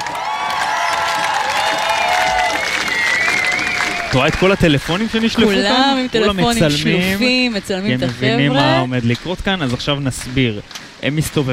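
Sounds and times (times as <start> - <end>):
large crowd applauding and cheering: 0.0 - 10.6
shouts and whistles: 0.5 - 4.6
speech: 4.1 - 11.5.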